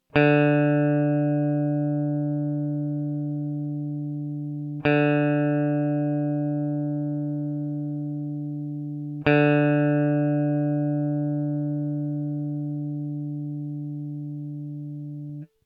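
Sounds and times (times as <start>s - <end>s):
open G and D chords: 0.2s - 15.5s.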